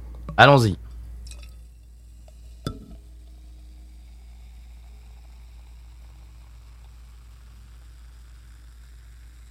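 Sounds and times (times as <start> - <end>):
low hum: 0.0 - 9.4
speech: 0.4 - 0.8
beer poured from a bottle into a tulip glass: 1.2 - 9.4
glass clink: 1.3 - 3.0.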